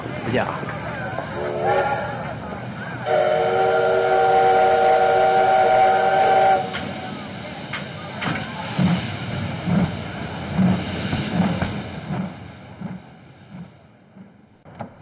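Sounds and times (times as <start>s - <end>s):
train pulling away rumbling and clattering: 0.0s - 15.0s
train whistle blast: 1.4s - 2.0s, 3.1s - 6.8s.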